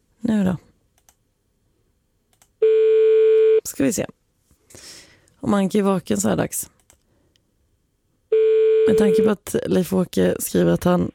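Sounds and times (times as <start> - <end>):
speech: 0.3 - 0.7, 3.7 - 4.8, 5.4 - 6.8, 8.9 - 11.1
faint clicks: 1.0 - 1.2, 2.3 - 2.5
telephone tone after dialling a number: 2.6 - 3.6, 8.3 - 9.3.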